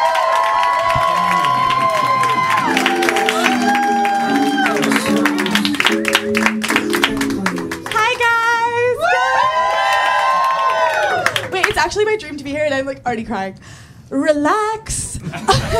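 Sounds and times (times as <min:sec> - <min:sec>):
crowd whooping and shouting: 0:00.0 - 0:05.7, 0:08.8 - 0:11.5
crowd clapping and cheering: 0:00.0 - 0:11.8
speech: 0:12.8 - 0:15.7
laughter: 0:15.2 - 0:15.7.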